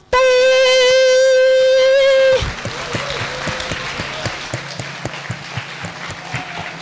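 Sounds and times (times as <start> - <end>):
long held sung note: 0.0 - 2.4
people clapping: 1.1 - 6.7.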